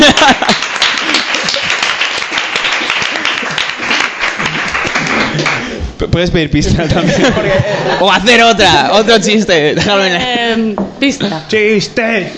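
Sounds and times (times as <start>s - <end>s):
laughter: 0.0s - 2.0s, 2.8s - 5.7s, 6.6s - 8.9s
crowd applauding: 0.0s - 5.7s
speech: 6.2s - 12.3s.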